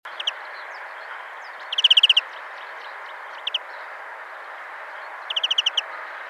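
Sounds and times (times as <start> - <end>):
European greenfinch Chloris chloris giving rapid chattering runs of sharp notes: 0.1 - 0.4, 1.0 - 2.3, 3.0 - 3.7, 5.1 - 6.0.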